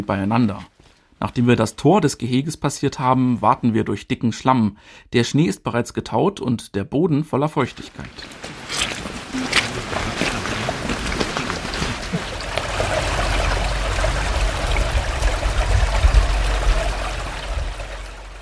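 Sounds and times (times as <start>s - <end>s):
speech: 0.0s - 8.8s
brook water flowing: 7.6s - 18.4s
low rumble: 9.4s - 18.4s.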